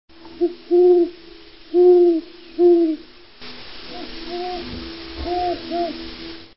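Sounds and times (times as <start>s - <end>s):
great horned owl hooting: 0.4s - 3.1s, 3.9s - 6.0s.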